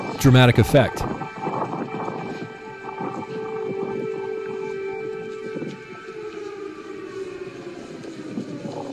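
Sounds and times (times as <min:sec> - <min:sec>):
speech: 0:00.2 - 0:01.1
broad wash of noise: 0:00.2 - 0:01.2
air raid siren wailing: 0:01.8 - 0:08.9.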